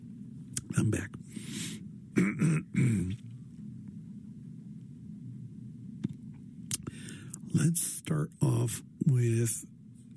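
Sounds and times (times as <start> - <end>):
low steady hum: 0.0 - 10.1
speech: 0.7 - 1.5, 7.6 - 9.8
forceful throat-clearing coughs: 2.2 - 3.2.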